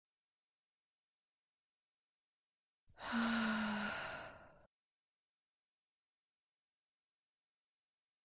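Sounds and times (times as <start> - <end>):
person sighing: 3.0 - 4.6.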